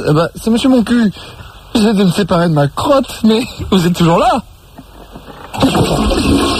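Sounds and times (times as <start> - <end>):
speech: 0.0 - 4.5
toilet flush: 5.5 - 6.5.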